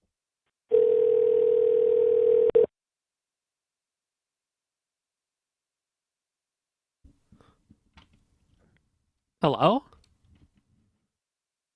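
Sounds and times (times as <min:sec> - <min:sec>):
steady telephone line tone: 0:00.7 - 0:02.7
speech: 0:09.4 - 0:09.9.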